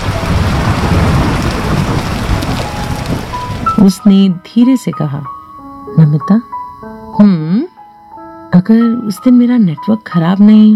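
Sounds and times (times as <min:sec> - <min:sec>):
heavy rain: 0:00.0 - 0:04.1
speech: 0:03.8 - 0:05.4, 0:06.0 - 0:06.5, 0:07.2 - 0:07.7, 0:08.6 - 0:10.7.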